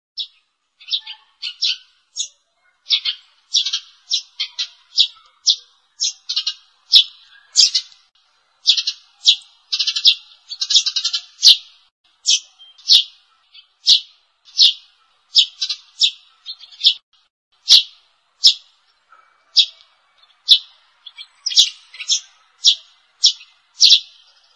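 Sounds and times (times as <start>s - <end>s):
sparrow lure call chirps: 0.2s - 24.5s.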